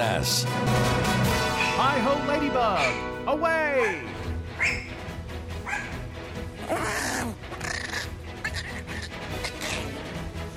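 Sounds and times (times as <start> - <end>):
speech: 0.0 - 1.1, 1.8 - 4.9
dog making agitated attack-mode noises: 6.6 - 10.5.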